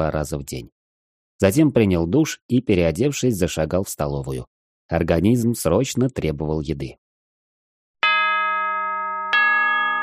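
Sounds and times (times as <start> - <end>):
speech: 0.0 - 0.8, 1.4 - 7.0
bell ringing to mark class time: 8.0 - 10.0.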